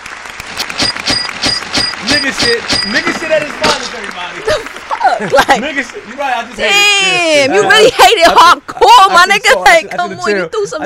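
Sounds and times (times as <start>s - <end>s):
sharp handclaps: 0.0s - 7.1s
laughter: 2.0s - 10.8s
speech: 2.2s - 10.8s.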